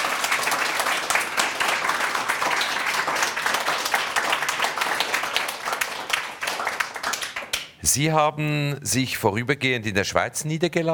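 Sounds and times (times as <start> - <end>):
room full of people clapping: 0.0 - 7.6
speech: 7.9 - 10.9.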